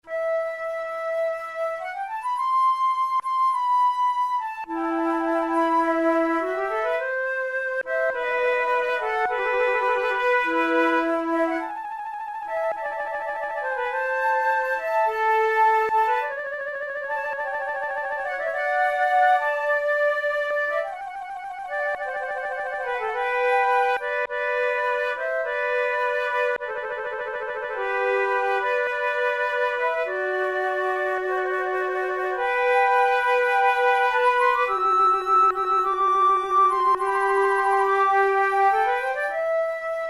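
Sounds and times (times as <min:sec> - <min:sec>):
slow grave flute duet: 0:00.0 - 0:40.0.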